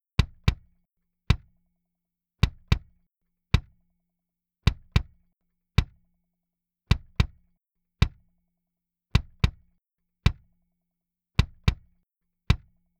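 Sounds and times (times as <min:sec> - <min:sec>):
kick drum with air band boost at 2.5 kHz through MD 421 microphone: 0:00.2 - 0:01.6, 0:02.4 - 0:03.8, 0:04.6 - 0:05.2, 0:05.8 - 0:06.1, 0:06.9 - 0:08.3, 0:09.2 - 0:10.6, 0:11.4 - 0:12.9.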